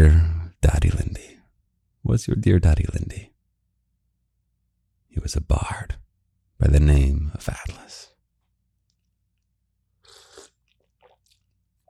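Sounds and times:
speech: 0.0 - 0.8, 2.2 - 3.3, 5.2 - 6.0, 6.6 - 8.1
slurping sip of a drink: 10.0 - 11.8.

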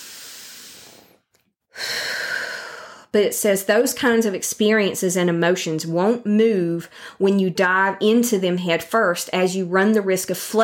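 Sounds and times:
deep breath taken slowly to relax: 0.0 - 3.1, 6.9 - 7.2
speech: 3.1 - 10.6.

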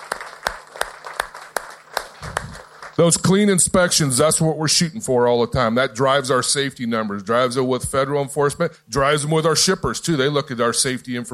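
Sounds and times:
faint audience applause at a trucking company meeting: 0.0 - 3.0
speech: 3.0 - 11.3.

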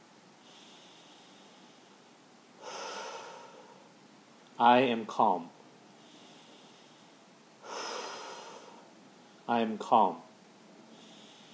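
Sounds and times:
slow deep inhale taken to calm down: 0.4 - 4.0, 6.0 - 9.5, 10.8 - 11.5
speech: 4.6 - 5.6, 9.5 - 10.2.

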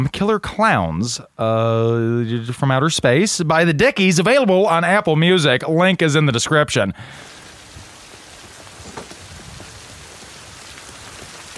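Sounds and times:
speech: 0.0 - 7.3
steady rain: 7.0 - 11.5
raindrops pattering on a hard surface: 8.4 - 11.5.

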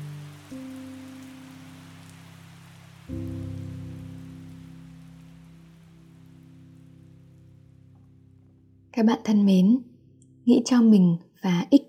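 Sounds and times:
steady rain falling at night: 0.0 - 8.7
speech: 9.0 - 11.8.

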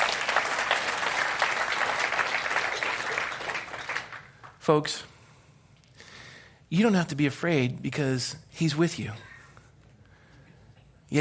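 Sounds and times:
large audience applause: 0.0 - 4.6
speech: 4.7 - 5.1, 6.7 - 9.3.

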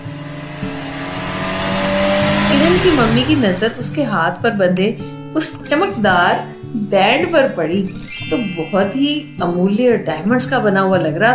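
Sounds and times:
car engine running as the vehicle pulls away: 0.0 - 5.6
speech: 2.8 - 11.3.

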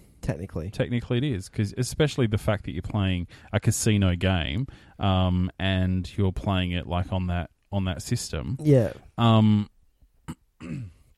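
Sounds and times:
speech: 0.2 - 9.7, 10.3 - 11.0
person coughing into the microphone: 10.3 - 11.1
rasping throat clearing: 10.3 - 11.1.

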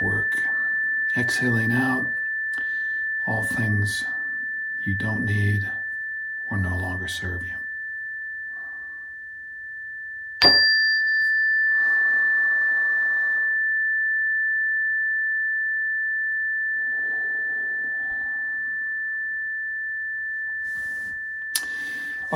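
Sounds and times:
meditation chime ringing with a clear pure sustained tone: 0.0 - 22.3
speech: 1.2 - 2.2, 3.3 - 4.2, 4.8 - 5.8, 6.5 - 7.6.

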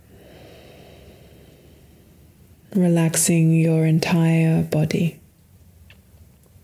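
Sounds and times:
deep breath in and out during a relaxation meditation: 0.0 - 2.7
speech: 2.7 - 5.2.

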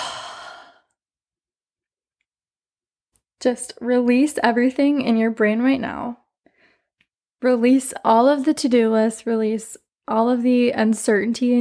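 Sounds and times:
deep breath exhale in a guided breathing exercise: 0.0 - 0.9
speech: 3.4 - 6.2, 7.4 - 11.6.

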